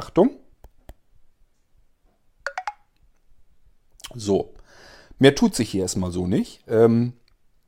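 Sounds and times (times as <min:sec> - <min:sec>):
speech: 0:00.0 - 0:00.4, 0:04.2 - 0:04.6, 0:05.2 - 0:07.2
taps on a smartphone screen: 0:02.5 - 0:02.9.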